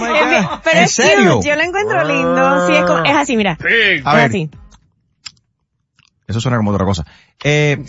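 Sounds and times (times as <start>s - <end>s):
speech: 0.3s - 4.6s, 6.3s - 7.8s
person imitating a cow with moo-like calls: 1.9s - 3.9s.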